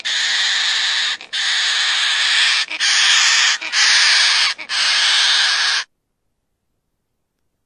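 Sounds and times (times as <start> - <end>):
crested parrot harsh buzzy screeches: 0.0 - 5.9.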